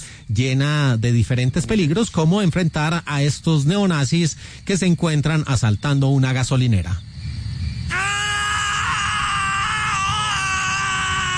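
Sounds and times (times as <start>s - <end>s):
speech: 0.3s - 7.1s
two men screaming: 7.9s - 11.3s.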